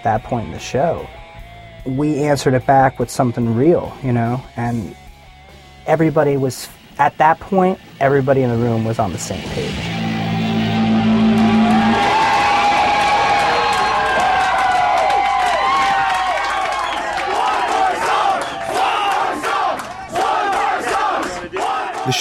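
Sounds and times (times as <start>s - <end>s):
speech: 0.0s - 1.2s, 1.8s - 5.0s, 5.8s - 10.0s
large concert crowd screaming and cheering at a band: 9.4s - 22.2s.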